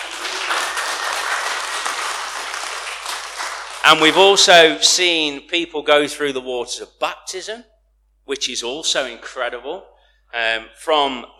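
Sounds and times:
audience applauding: 0.0s - 4.6s
speech: 3.8s - 7.7s, 8.3s - 11.3s.

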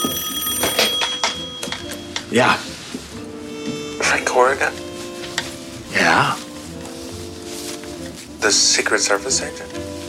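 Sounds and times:
telephone ringing with a rapid rattling bell: 0.0s - 2.4s
speech: 2.3s - 2.7s, 4.1s - 4.8s, 5.9s - 6.4s, 8.4s - 9.9s.

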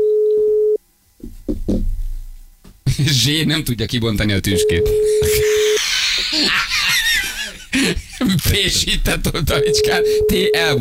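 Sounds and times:
telephone ringing tone while calling a public phone booth: 0.0s - 0.8s, 4.6s - 5.7s, 9.6s - 10.6s
laughter: 2.9s - 3.3s, 5.0s - 8.9s
speech: 3.0s - 5.6s, 6.4s - 6.7s, 7.9s - 10.7s.

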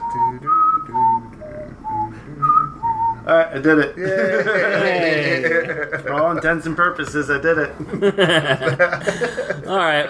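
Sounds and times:
several people whistling a game-show waiting tune: 0.0s - 3.2s
speech: 0.1s - 0.6s, 3.3s - 10.0s
laughter: 3.6s - 6.8s, 7.8s - 10.0s.

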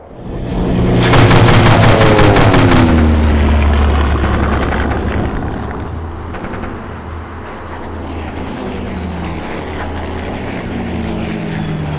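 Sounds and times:
seaplane propeller engine droning: 0.0s - 11.9s
seaplane machine gun fire: 0.9s - 4.9s.

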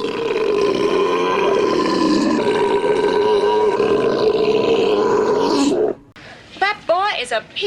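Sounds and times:
loud belch in a contest: 0.0s - 6.0s.

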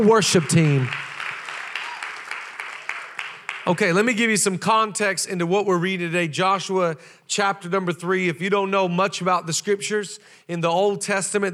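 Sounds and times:
speech: 0.0s - 1.0s, 3.7s - 11.5s
audience applause for keyboard player: 0.0s - 3.8s.

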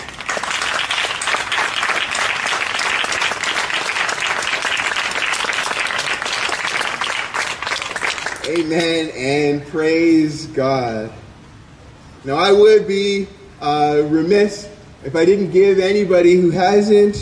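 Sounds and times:
large crowd applauding: 0.0s - 9.0s
speech: 8.5s - 11.2s, 12.2s - 17.2s.

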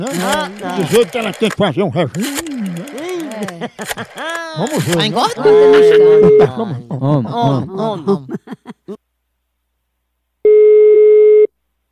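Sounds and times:
speech: 0.0s - 2.8s, 3.4s - 9.0s
laughter: 0.0s - 9.0s
ringback tone of an outgoing telephone call: 5.4s - 6.5s, 10.5s - 11.5s.

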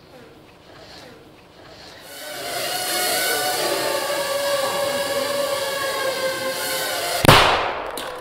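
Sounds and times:
steady high buzzing whine: 2.1s - 8.0s
small shaped explosive charge detonating in one sharp bang: 7.2s - 8.1s.

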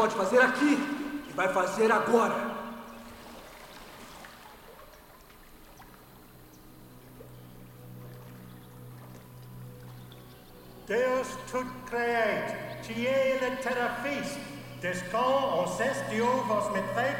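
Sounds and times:
speech: 0.0s - 2.6s, 10.9s - 17.1s
low steady hum: 0.0s - 17.1s
water pouring and trickling: 2.4s - 12.9s.

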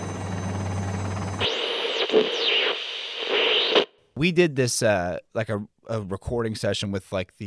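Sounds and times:
helicopter rotor sound effect roar with low hum: 0.0s - 1.4s
swooping whistling electronic tones: 0.0s - 3.9s
speech: 1.4s - 2.5s, 4.2s - 7.4s.

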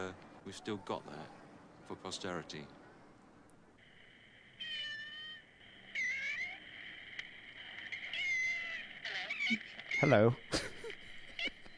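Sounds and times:
speech: 0.0s - 2.8s, 9.5s - 10.6s
cat yowling with voice-like tones: 4.6s - 6.6s, 7.9s - 10.2s.

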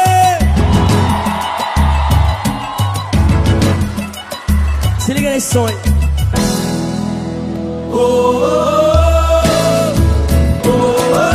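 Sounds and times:
large concert crowd whooping and yelling at night: 0.0s - 5.6s
pounding live music at a concert: 0.0s - 11.3s
speech: 5.4s - 5.9s.

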